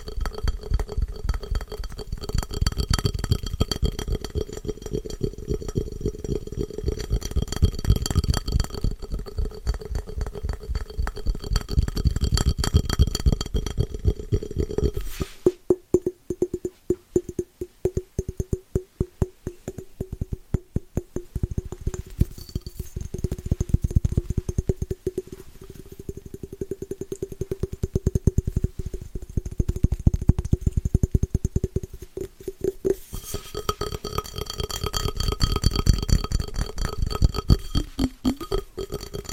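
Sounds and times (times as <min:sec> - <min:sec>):
fast scratchy tapping: 0:00.0 - 0:39.3.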